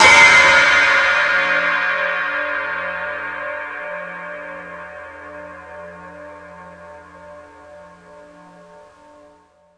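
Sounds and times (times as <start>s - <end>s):
high drum cymbal hit: 0.0s - 7.6s.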